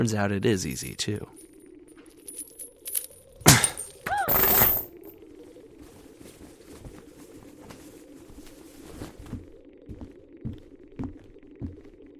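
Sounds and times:
speech: 0.0 - 1.4
low steady hum: 0.0 - 12.1
metal handcuff chain shattering under twisting force: 1.4 - 5.1.

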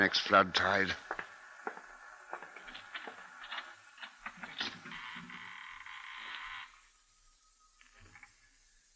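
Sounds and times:
speech: 0.0 - 1.0
door hinge creaking and squealing: 2.6 - 6.8
creaky door swinging open: 4.3 - 6.8.

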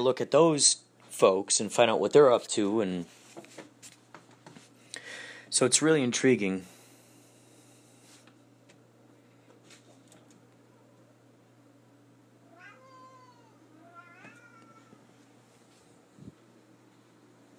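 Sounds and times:
speech: 0.0 - 3.2, 5.5 - 6.7
cat meowing: 12.4 - 15.1.

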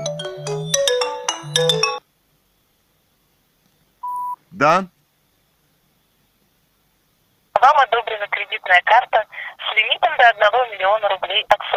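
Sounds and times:
melodic phone ringtone playing a quick bright tune: 0.0 - 2.0
short steady beep tone: 4.0 - 4.4
speech: 4.6 - 5.0, 7.6 - 11.7.

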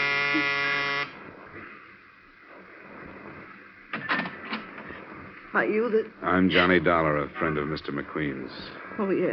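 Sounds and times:
electric door buzzer of a ground-floor apartment in a row house: 0.0 - 1.2
speech: 0.3 - 0.6, 5.6 - 9.3.

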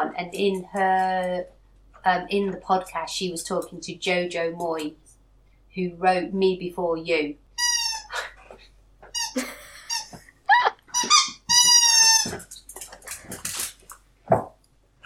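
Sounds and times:
speech: 0.2 - 5.0, 5.8 - 7.4
dog chewing rubber squeaky toy: 7.6 - 8.1, 9.1 - 10.2, 10.9 - 12.5.

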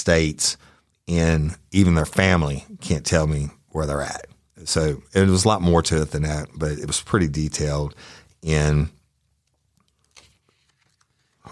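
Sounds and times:
speech: 0.0 - 9.0
paper pages of court transcript notes being turned and handled: 9.4 - 11.5.

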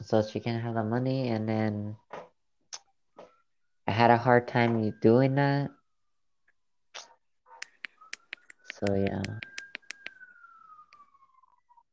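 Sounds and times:
speech: 0.1 - 2.1, 4.0 - 5.8, 8.8 - 9.5
faint siren tone gliding downward: 3.2 - 6.0, 7.0 - 11.9
sharp clicks: 7.0 - 10.3.

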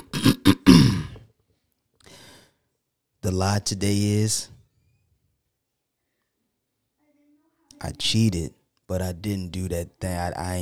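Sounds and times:
person clearing throat: 0.0 - 1.2
speech: 3.3 - 4.6, 7.8 - 10.6.

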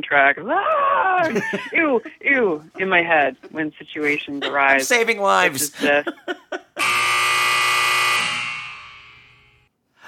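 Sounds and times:
speech: 0.0 - 7.0
laughter: 1.2 - 6.8
game show buzzer: 6.8 - 9.7.

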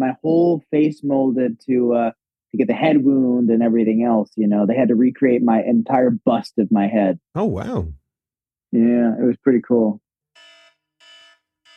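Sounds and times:
speech: 0.0 - 8.0, 8.7 - 10.0
loud electronic timer alarm beeping: 10.4 - 11.7.

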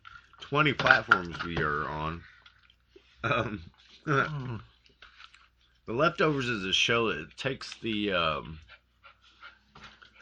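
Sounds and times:
speech: 0.5 - 2.3, 3.2 - 4.7, 5.9 - 8.7
female dog panting: 6.2 - 10.2.

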